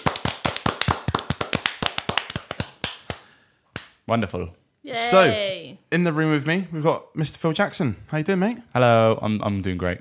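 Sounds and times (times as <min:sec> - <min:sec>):
sharp hand claps: 0:00.0 - 0:04.0
speech: 0:04.1 - 0:09.9.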